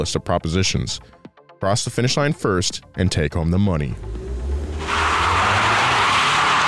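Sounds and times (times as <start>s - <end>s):
speech: 0.0s - 4.2s
drag racing car tires squealing on dusty Los Angeles streets: 3.9s - 6.6s
souped-up Japanese import drag racing car engine roaring: 3.9s - 6.6s.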